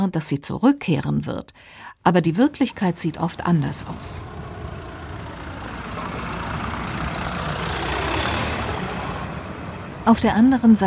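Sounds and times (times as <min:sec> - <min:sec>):
speech: 0:00.0 - 0:04.5, 0:10.1 - 0:10.8
car engine running while parking in a small town in winter: 0:02.8 - 0:10.8.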